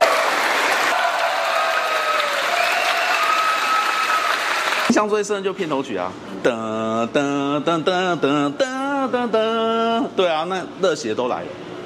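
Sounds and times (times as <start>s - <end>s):
large theater audience clapping: 0.0s - 4.9s
scattered cheers from a theater audience: 0.0s - 4.9s
speech: 4.9s - 11.7s.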